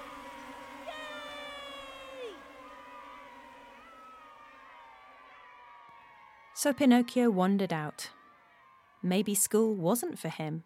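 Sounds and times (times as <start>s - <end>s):
dense steady buzzing drone: 0.0s - 5.0s
speech: 6.6s - 8.2s, 9.0s - 10.6s.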